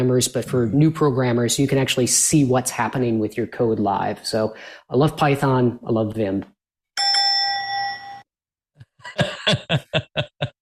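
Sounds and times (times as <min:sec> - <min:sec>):
speech: 0:00.0 - 0:06.5, 0:09.2 - 0:10.5
bell ringing with bright tone: 0:07.0 - 0:08.3
burst of choppy laughter: 0:08.8 - 0:10.6.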